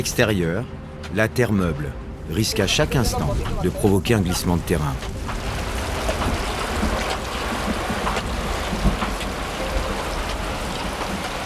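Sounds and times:
speech: 0.0 - 5.4
heavy drips and splashes: 2.8 - 11.4
rain and running water pouring onto a tarp outside on waterlogged ground: 2.8 - 11.4.

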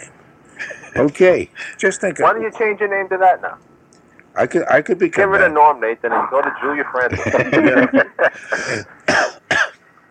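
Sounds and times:
speech: 1.0 - 3.7, 4.4 - 9.0
laughter: 7.0 - 9.0
person coughing harshly: 8.4 - 9.8.

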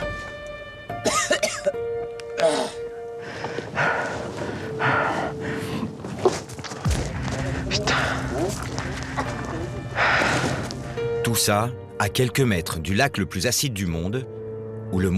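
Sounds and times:
speech: 0.9 - 2.8, 11.3 - 15.1
person coughing from toxic volcanic fumes beside an acidic crater lake: 1.0 - 1.8, 2.4 - 2.8
breathing and gasps: 3.2 - 6.0, 7.2 - 11.0.

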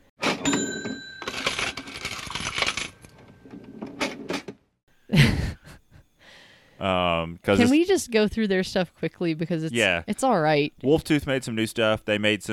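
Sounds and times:
cash register ringing with a bright ching: 0.2 - 4.4
speech: 6.8 - 12.5.

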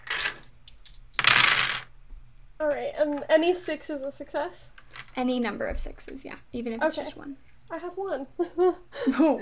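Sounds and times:
handful of dice clattering across a hard surface: 0.0 - 1.9, 4.9 - 5.2
speech: 2.6 - 9.4.

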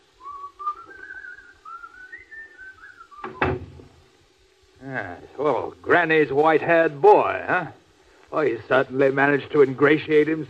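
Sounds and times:
person whistling a wandering tune: 0.2 - 3.5
door bumping shut as people leave: 3.2 - 3.9
speech: 4.8 - 10.4.

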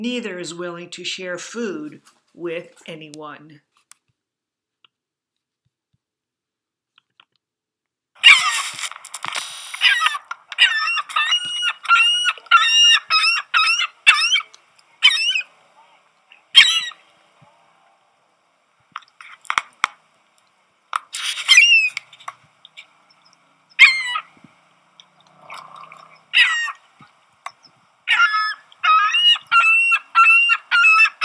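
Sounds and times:
speech: 0.0 - 3.7
gulls calling: 9.8 - 17.9, 21.2 - 31.2.

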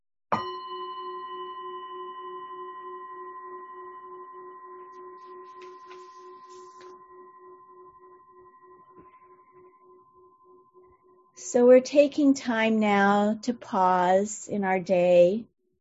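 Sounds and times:
speech: 0.3 - 0.5, 11.4 - 15.5
meditation bell struck to begin a meditation: 0.4 - 12.2.

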